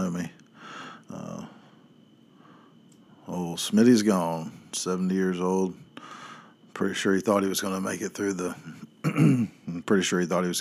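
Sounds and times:
speech: 3.6s - 5.8s, 6.8s - 10.6s
person clearing throat: 9.0s - 9.8s.

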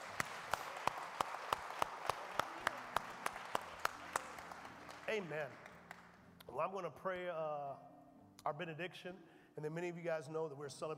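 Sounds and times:
crowd applauding in a roomy space: 0.0s - 6.2s
speech: 5.1s - 5.7s, 6.5s - 10.9s.

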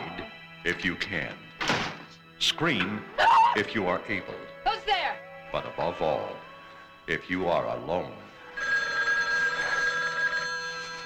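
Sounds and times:
speech: 0.6s - 1.5s, 2.4s - 6.4s, 7.1s - 8.2s
telephone ringing: 8.4s - 11.0s.

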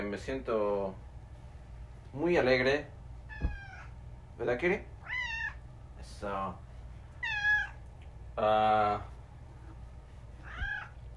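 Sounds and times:
low hum: 0.0s - 11.1s
speech: 0.1s - 1.1s, 2.1s - 3.5s, 4.4s - 4.9s, 6.0s - 6.6s, 8.4s - 9.1s
cats meowing insistently to be fed: 3.3s - 4.0s, 5.0s - 5.6s, 7.1s - 7.9s, 10.4s - 11.1s.

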